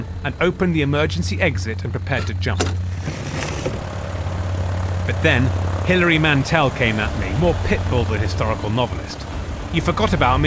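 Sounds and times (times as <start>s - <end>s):
airplane engine drone in flight: 0.0s - 10.4s
speech: 0.2s - 3.5s, 5.1s - 10.4s.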